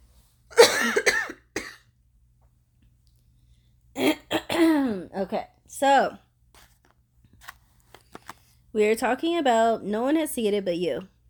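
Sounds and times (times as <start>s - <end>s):
person coughing: 0.5s - 1.8s, 4.0s - 5.1s
speech: 5.2s - 6.2s, 8.7s - 11.1s.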